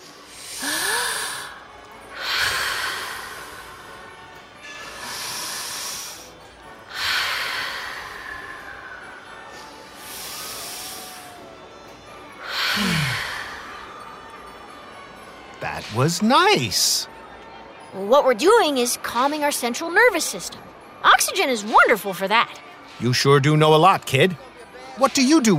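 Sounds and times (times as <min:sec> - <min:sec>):
group taking big deep breaths: 0:00.0 - 0:11.6, 0:12.4 - 0:14.2
speech: 0:15.8 - 0:17.1, 0:18.1 - 0:20.6, 0:21.2 - 0:25.5.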